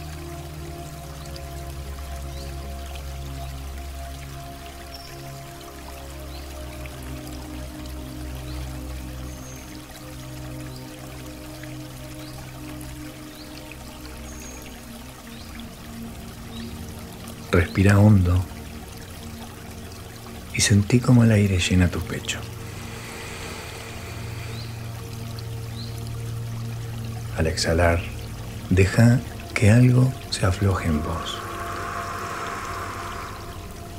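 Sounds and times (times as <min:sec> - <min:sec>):
rush of flowing water: 0:00.0 - 0:33.9
speech: 0:17.6 - 0:18.5, 0:20.6 - 0:22.6, 0:27.4 - 0:28.1, 0:28.7 - 0:31.4
low sustained hum: 0:21.9 - 0:27.3, 0:28.1 - 0:33.9.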